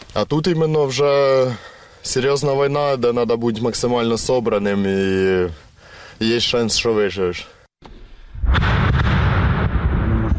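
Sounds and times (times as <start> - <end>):
speech: 0.2 - 5.6, 6.2 - 7.5
sharp blasts in a forest: 7.9 - 10.3
heavy explosion booming in a forest during a war: 8.0 - 10.3.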